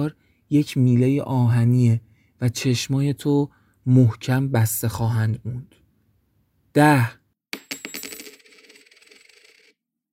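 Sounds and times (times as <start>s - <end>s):
speech: 0.0s - 5.8s, 6.8s - 7.2s
coin hitting and bouncing on a hard floor: 7.5s - 9.8s.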